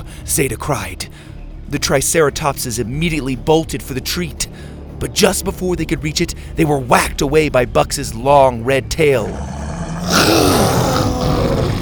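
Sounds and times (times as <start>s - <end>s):
speech: 0.3s - 11.4s
deep rumbling dinosaur roar: 9.2s - 11.7s.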